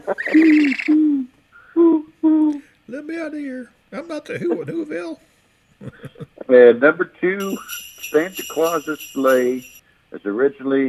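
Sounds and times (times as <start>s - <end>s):
owl hooting: 0.0s - 1.8s
speech: 0.1s - 1.0s, 3.3s - 10.8s
laughter: 4.2s - 5.2s, 5.8s - 6.4s.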